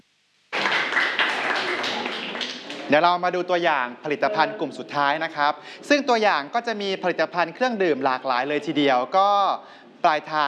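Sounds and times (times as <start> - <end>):
audience applause at the end of a product presentation: 0.5 - 3.0
speech: 2.9 - 10.4.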